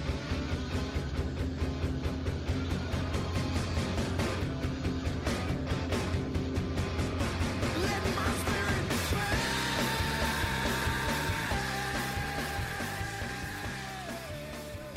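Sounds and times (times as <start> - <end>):
loud dense rock music: 0.0 - 14.9
singer screaming over the band: 7.8 - 14.9.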